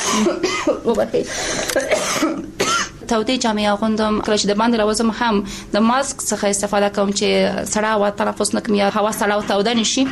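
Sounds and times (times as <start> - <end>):
person with a cold-weather illness coughing: 0.0 - 3.0
speech: 0.2 - 10.1.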